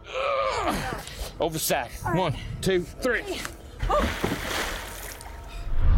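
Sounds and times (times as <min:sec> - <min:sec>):
speech: 0:00.6 - 0:04.6
river water churning and sloshing: 0:03.5 - 0:05.6
body splashing into river water: 0:03.9 - 0:05.2
low rumble: 0:05.5 - 0:05.9.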